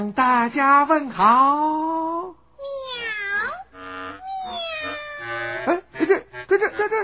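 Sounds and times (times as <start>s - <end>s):
speech: 0.0s - 2.1s, 5.6s - 7.0s
cat meowing: 2.6s - 5.4s.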